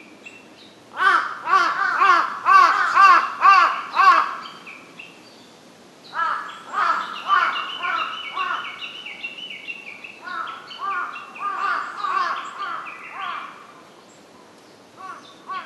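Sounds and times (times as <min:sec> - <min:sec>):
large-billed crow harsh cawing: 0:01.0 - 0:04.4, 0:06.2 - 0:08.8, 0:10.2 - 0:13.7, 0:15.0 - 0:15.6.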